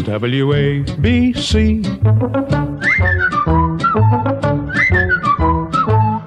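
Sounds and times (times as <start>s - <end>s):
speech: 0.2s - 4.4s
whistled tune with instrumental backing in a radio station jingle: 2.2s - 6.2s.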